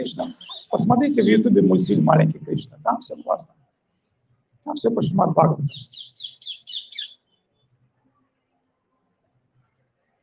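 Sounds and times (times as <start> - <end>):
parrot squawking: 0.0 - 1.5, 5.6 - 7.2
speech: 0.0 - 3.6, 4.7 - 6.2.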